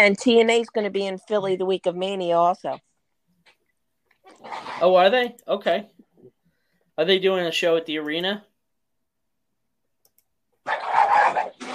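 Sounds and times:
speech: 0.0s - 2.9s, 4.3s - 6.0s, 7.0s - 8.5s
dog snarling and barking during a dog and cat fight: 4.3s - 5.0s, 10.6s - 11.7s.

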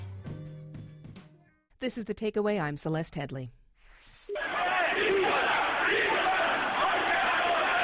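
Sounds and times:
speech: 1.8s - 3.6s
protest crowd shouting during violent clashes with police in Tehran, Iran: 4.4s - 7.8s.

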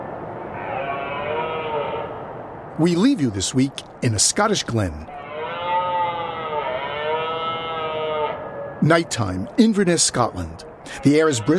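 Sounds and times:
red deer stags roaring during the rutting season: 0.5s - 2.2s, 5.1s - 9.6s, 10.3s - 11.5s
speech: 2.8s - 5.2s, 8.8s - 11.5s.

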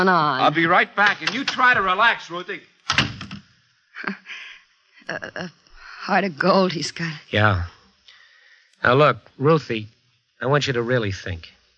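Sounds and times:
speech: 0.0s - 2.7s, 5.1s - 7.8s, 8.8s - 11.6s
latch clicking and rattling: 1.0s - 1.9s, 2.9s - 3.4s
heavy door shutting as someone leaves: 1.0s - 2.0s, 2.8s - 3.5s.

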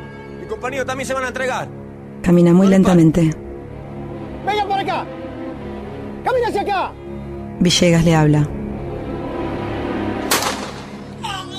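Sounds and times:
speech: 0.5s - 3.4s, 4.4s - 5.2s, 6.2s - 7.0s, 7.6s - 8.6s
gunshot: 10.3s - 11.1s.

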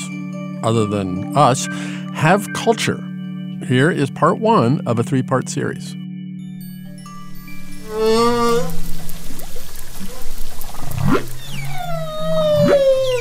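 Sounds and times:
speech: 0.6s - 6.0s, 7.9s - 8.9s
humpback whale singing underwater: 7.6s - 13.1s.

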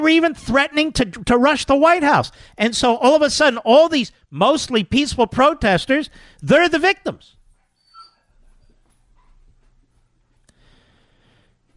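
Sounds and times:
speech: 0.0s - 7.4s
scared dog whimpering: 7.6s - 9.4s
low room rumble: 8.3s - 11.7s.

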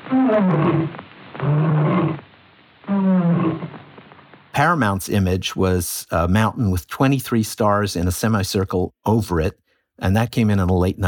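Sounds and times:
lion roaring in film studio logo: 0.1s - 2.2s, 2.9s - 3.8s
speech: 0.1s - 2.2s, 4.6s - 11.0s.

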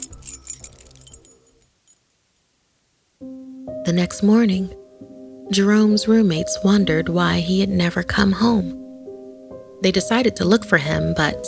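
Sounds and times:
keys jangling while unlocking a door: 0.0s - 2.1s
speech: 3.2s - 4.8s, 5.5s - 8.8s, 9.8s - 11.4s.

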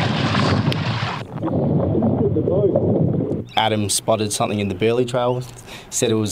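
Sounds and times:
rushing water noise recorded underwater: 0.0s - 3.5s
speech: 2.5s - 6.3s.

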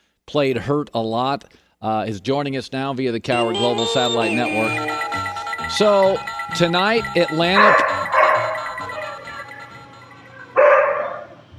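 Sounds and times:
speech: 0.3s - 8.0s
dog barking indoors: 8.1s - 8.5s, 10.6s - 11.3s.

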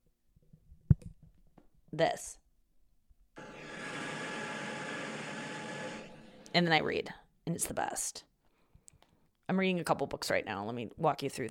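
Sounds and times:
speech: 1.9s - 2.4s, 6.5s - 8.3s, 9.5s - 11.5s
white noise machine broadband hiss: 3.4s - 6.9s.

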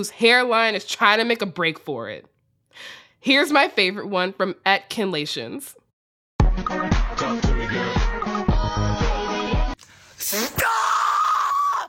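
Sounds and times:
speech: 0.0s - 5.8s, 10.2s - 10.8s
upbeat music with a pounding beat: 6.4s - 9.8s
person letting out a loud drawn-out primal scream: 10.3s - 11.8s.

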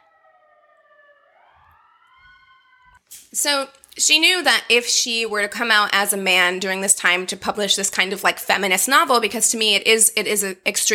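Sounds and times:
siren wailing: 0.0s - 3.0s
speech: 3.1s - 10.9s.

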